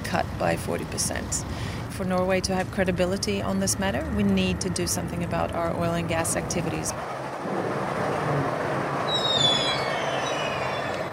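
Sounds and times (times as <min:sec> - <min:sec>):
electric passenger train leaving Oslo rolling along the rails: 0:00.0 - 0:11.1
speech: 0:00.1 - 0:07.6
thin high train wheel squeal: 0:09.1 - 0:11.1.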